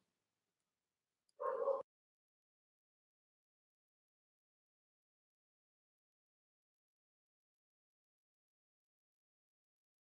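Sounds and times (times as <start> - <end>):
dog barking: 1.4 - 1.9.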